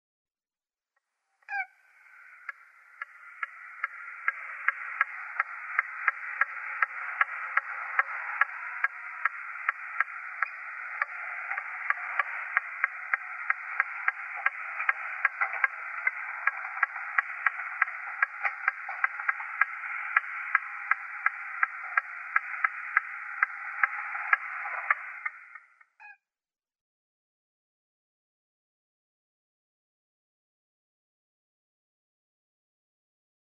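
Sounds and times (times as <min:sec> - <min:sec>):
American purple gallinule calling: 0:01.4 - 0:26.2.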